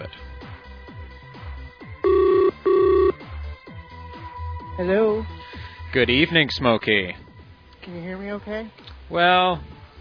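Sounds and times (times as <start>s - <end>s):
telephone ringback tones while placing a call: 2.0s - 3.2s
speech: 4.8s - 7.2s, 7.8s - 9.7s.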